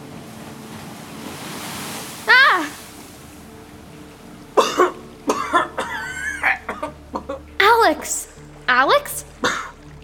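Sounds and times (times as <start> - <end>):
rushing water: 0.0 - 10.0.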